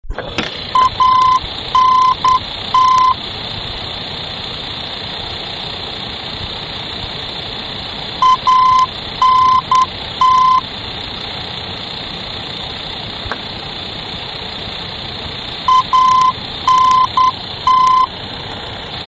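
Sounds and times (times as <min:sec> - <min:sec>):
VOR aerobeacon signal in Belgium: 0:00.0 - 0:03.2, 0:08.2 - 0:10.7, 0:15.6 - 0:18.2.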